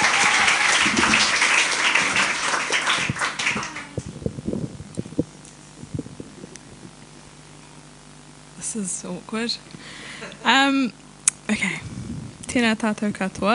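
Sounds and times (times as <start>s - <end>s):
crowd applauding loudly: 0.0s - 4.1s
speech: 8.8s - 11.9s, 12.5s - 13.5s.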